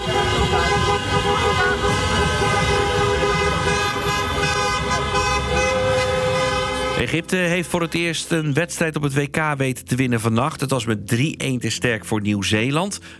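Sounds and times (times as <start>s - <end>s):
car horns of celebrating football fans driving around Rotterdam: 0.0s - 7.6s
dense traffic noise: 0.0s - 8.8s
speech: 7.1s - 13.1s.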